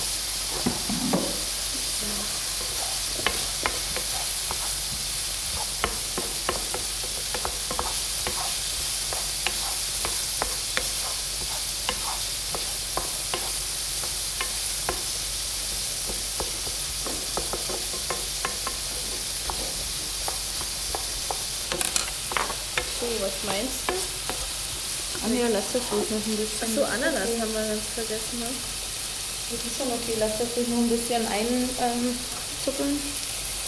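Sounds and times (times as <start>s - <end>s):
scraping stirs in a pan: 0.0s - 26.2s
food crackling and sizzling in a hot pan: 0.0s - 33.6s
speech: 25.8s - 28.7s, 29.5s - 33.2s.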